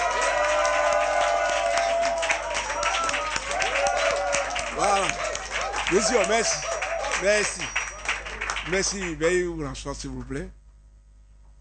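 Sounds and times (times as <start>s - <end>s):
crowd cheering with shouts and whoops at a donation ceremony: 0.0s - 9.3s
speech: 5.9s - 7.8s, 8.7s - 10.6s.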